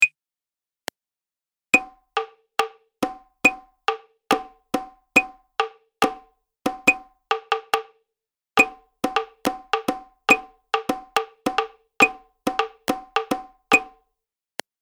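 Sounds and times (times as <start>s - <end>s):
prepared rhythm exercise for advanced musicianship: 1.8s - 7.9s, 8.6s - 14.0s.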